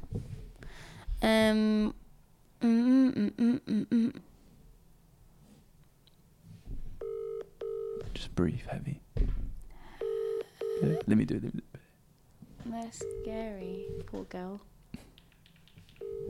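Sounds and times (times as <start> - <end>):
speech: 1.2 - 2.0, 2.6 - 4.3, 8.4 - 9.4, 10.8 - 11.8, 12.7 - 14.7
phone dialing beeps: 10.0 - 11.1, 13.0 - 14.1, 16.0 - 16.2
phone line steady electronic tone: 10.0 - 11.1, 12.9 - 14.1, 16.0 - 16.2
phone ringback tone: 10.0 - 11.1, 12.9 - 14.0.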